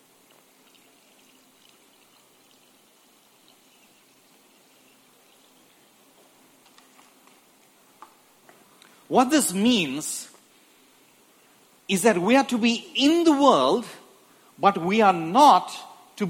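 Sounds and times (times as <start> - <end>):
water pouring into a container: 0.2 - 5.8
speech: 9.1 - 10.3, 11.9 - 14.0, 14.6 - 16.2.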